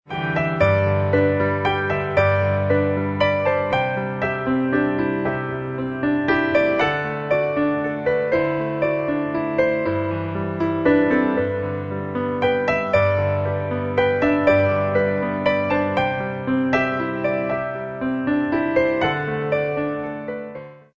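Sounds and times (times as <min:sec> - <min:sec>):
piano piece: 0:00.0 - 0:20.9.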